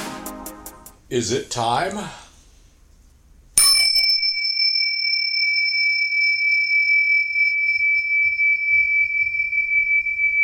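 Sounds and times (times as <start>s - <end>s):
speech: 1.1s - 2.2s
bell ringing: 3.6s - 10.4s.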